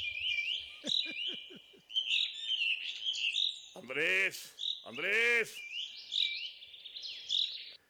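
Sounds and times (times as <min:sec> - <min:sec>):
small birds chirping while being fed at a ranch: 0:00.0 - 0:07.8
laughter: 0:00.7 - 0:01.9
man calling out: 0:03.8 - 0:05.6
speech: 0:03.8 - 0:05.7.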